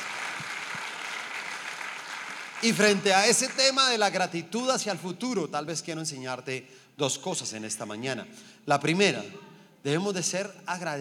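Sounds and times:
audience applauding: 0:00.0 - 0:03.9
speech: 0:02.6 - 0:10.9.

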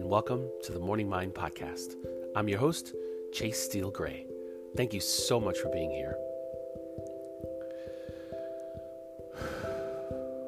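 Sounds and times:
soft steady music bed with a regular low pulse: 0:00.0 - 0:10.4
speech: 0:00.1 - 0:06.3
deep breath before a morning meditation talk: 0:07.6 - 0:08.6, 0:09.3 - 0:10.3.

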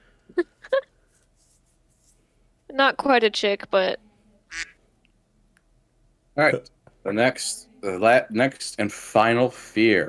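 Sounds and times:
speech: 0:02.8 - 0:04.7, 0:06.4 - 0:10.0
duck quacking: 0:04.5 - 0:04.8.

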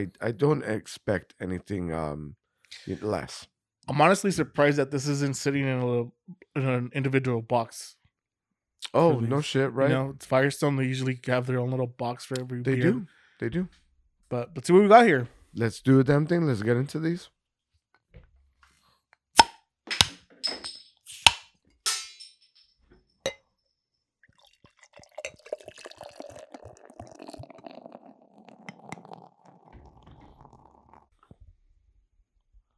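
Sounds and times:
speech: 0:00.0 - 0:08.0, 0:08.8 - 0:17.4
glass and beer bottle clinking while handled: 0:19.4 - 0:22.7, 0:24.4 - 0:31.0
Oktoberfest-style beer gurgling as it pours into a glass: 0:24.3 - 0:31.1.

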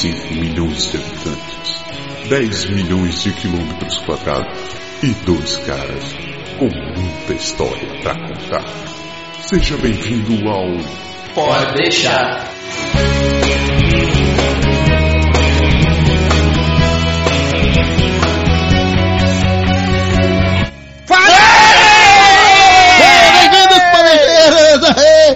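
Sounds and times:
speech: 0:00.0 - 0:01.5, 0:02.3 - 0:13.7, 0:24.9 - 0:25.3
steady music playing: 0:00.0 - 0:25.3
laughter: 0:07.9 - 0:09.0, 0:22.7 - 0:25.3
many guests screaming and yelling together: 0:21.1 - 0:25.1.

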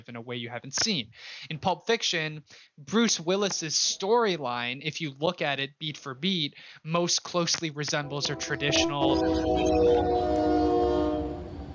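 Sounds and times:
speech: 0:00.1 - 0:10.7
train horn blaring in one long chord: 0:08.0 - 0:11.7.

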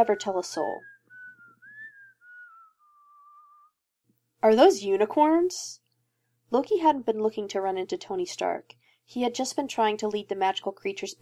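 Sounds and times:
speech: 0:00.0 - 0:00.9, 0:04.4 - 0:05.8, 0:06.5 - 0:11.2
person whistling a short tune: 0:00.0 - 0:03.8.

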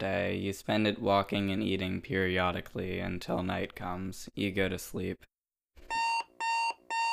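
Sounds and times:
speech: 0:00.0 - 0:05.9
alarm clock beeping: 0:05.9 - 0:07.1.

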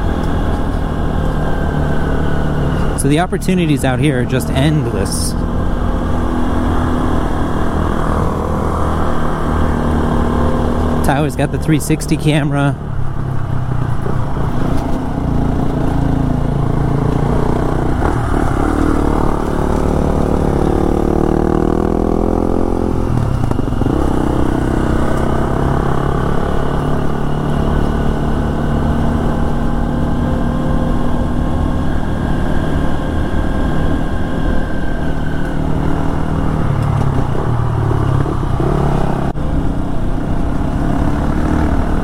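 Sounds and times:
Honda XR150L and KTM XCF-W 350 dirt bikes riding in the Pisgah Ranger District: 0:00.0 - 0:42.0
speech: 0:03.0 - 0:05.6, 0:11.1 - 0:12.9.

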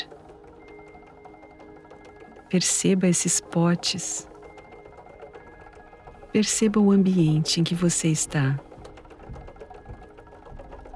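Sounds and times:
wooden potter's wheel turning: 0:00.0 - 0:10.9
speech: 0:02.5 - 0:04.3, 0:06.3 - 0:08.7.

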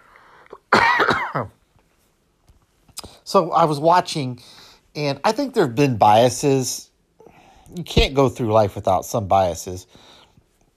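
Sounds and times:
person coughing: 0:00.5 - 0:01.6
speech: 0:01.4 - 0:01.6, 0:03.3 - 0:06.9, 0:07.7 - 0:10.2.

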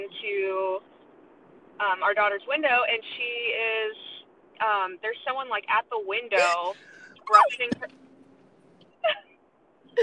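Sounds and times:
speech: 0:00.0 - 0:01.0, 0:01.8 - 0:08.0, 0:09.0 - 0:09.3
person squealing in fright: 0:06.4 - 0:07.6.

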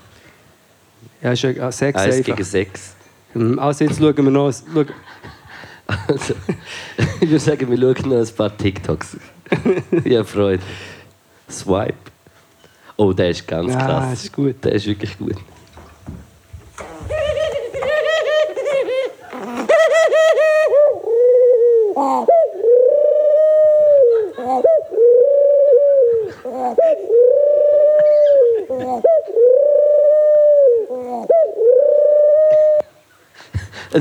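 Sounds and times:
speech: 0:01.2 - 0:05.4, 0:06.1 - 0:12.1, 0:13.0 - 0:15.6
laughter: 0:04.6 - 0:08.2, 0:08.8 - 0:10.3, 0:16.8 - 0:20.8, 0:24.0 - 0:24.7, 0:28.0 - 0:29.1
pigeon cooing: 0:16.7 - 0:33.0.

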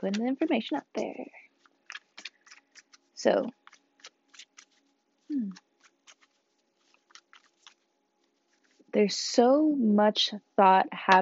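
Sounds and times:
speech: 0:00.0 - 0:01.4, 0:03.2 - 0:03.6, 0:05.3 - 0:05.6, 0:08.9 - 0:11.2
tarot cards being shuffled: 0:00.0 - 0:08.9.

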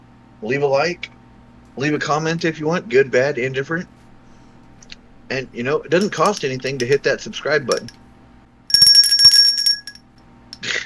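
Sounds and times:
speech: 0:00.4 - 0:01.2, 0:01.8 - 0:04.0, 0:05.3 - 0:08.0
bright high metallic bell ringing: 0:07.7 - 0:07.9, 0:08.7 - 0:10.1.

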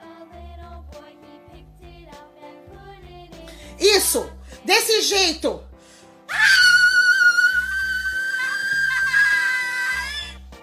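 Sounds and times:
speech: 0:03.8 - 0:05.7
loud piercing human scream: 0:06.3 - 0:10.4.

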